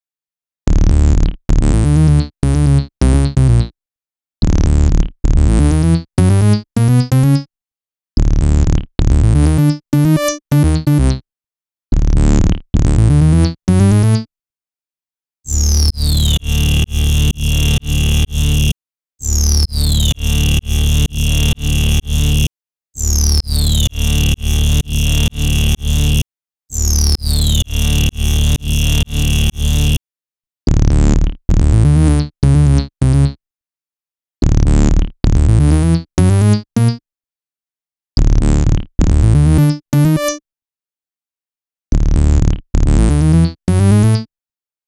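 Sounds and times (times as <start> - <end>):
128bpm bass line: 0.7 - 3.7, 4.4 - 7.4, 8.2 - 11.2, 11.9 - 14.3, 15.5 - 30.0, 30.7 - 33.4, 34.4 - 36.9, 38.2 - 40.2, 41.9 - 44.2.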